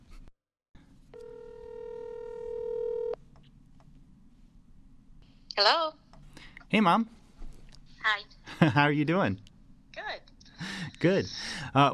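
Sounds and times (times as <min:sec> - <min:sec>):
steady telephone line tone during a call: 0:01.1 - 0:03.2
speech: 0:05.6 - 0:06.0, 0:06.7 - 0:07.2, 0:08.1 - 0:09.5, 0:11.0 - 0:11.9.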